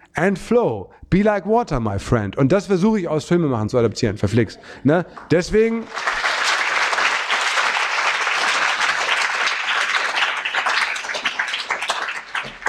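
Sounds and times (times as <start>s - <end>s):
speech: 0.2s - 6.1s
audience applauding: 5.1s - 12.6s.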